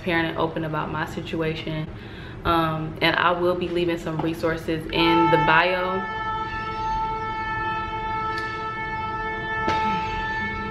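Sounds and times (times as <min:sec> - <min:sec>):
speech: 0:00.0 - 0:06.2
train horn blare outside: 0:04.9 - 0:10.6.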